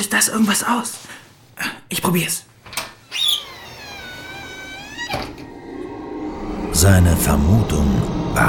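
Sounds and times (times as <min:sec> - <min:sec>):
speech: 0:00.0 - 0:02.5, 0:06.8 - 0:08.4
small fireplace glass door creaking open: 0:02.7 - 0:05.7.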